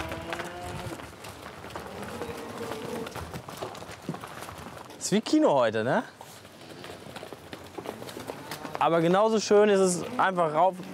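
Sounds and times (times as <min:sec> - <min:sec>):
cows' hooves thudding as the herd runs out onto pasture: 0:00.0 - 0:10.9
speech: 0:05.1 - 0:06.2, 0:08.8 - 0:10.9.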